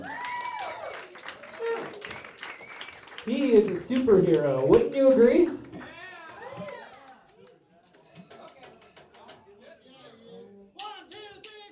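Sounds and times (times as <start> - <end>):
audience applause: 0.0 - 7.6
speech: 3.2 - 5.6.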